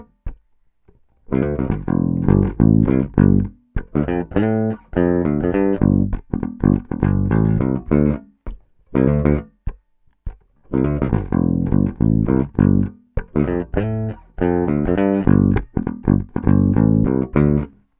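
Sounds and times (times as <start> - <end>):
electric guitar humbucker bridge pickup tone: 1.3 - 8.3, 10.6 - 17.8.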